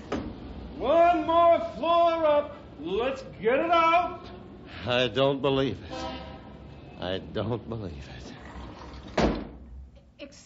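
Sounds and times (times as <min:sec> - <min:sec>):
speech: 0:01.3 - 0:06.1, 0:07.0 - 0:08.4
door opening with a thud: 0:09.1 - 0:09.6.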